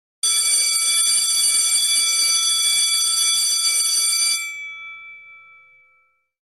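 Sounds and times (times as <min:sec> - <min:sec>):
school bell ringing: 0:00.2 - 0:06.4.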